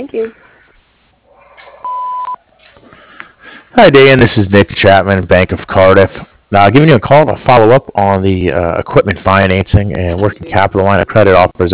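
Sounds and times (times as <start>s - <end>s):
speech: 0.0s - 0.5s, 3.8s - 11.7s
answering machine beep: 1.8s - 2.4s.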